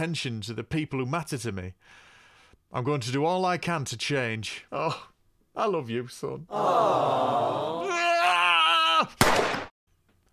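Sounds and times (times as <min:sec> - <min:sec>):
speech: 0:00.0 - 0:02.1, 0:02.7 - 0:08.0
voice wailing and moaning: 0:06.5 - 0:09.2
single loud sharp gunshot: 0:09.2 - 0:09.7.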